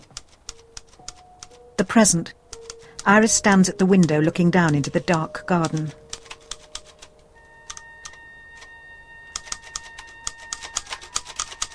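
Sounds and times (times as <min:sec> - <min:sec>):
typewriter keys clattering: 0:00.0 - 0:01.6, 0:02.5 - 0:07.1, 0:09.4 - 0:11.7
speech: 0:01.8 - 0:02.4, 0:03.0 - 0:06.0.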